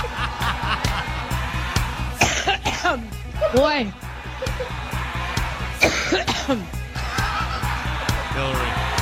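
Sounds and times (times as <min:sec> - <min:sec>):
laughter: 0:00.0 - 0:02.1, 0:03.4 - 0:09.0
driving rhythmic beat: 0:00.0 - 0:09.0
person coughing on the campaign trail: 0:02.2 - 0:03.0, 0:05.8 - 0:06.6
speech: 0:02.9 - 0:04.0, 0:05.8 - 0:06.8, 0:08.4 - 0:08.8.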